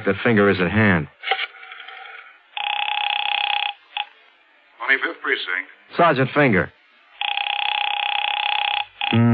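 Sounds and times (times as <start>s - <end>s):
speech: 0.0s - 1.4s, 4.9s - 6.8s
telephone bell ringing: 2.6s - 4.1s, 7.2s - 9.2s.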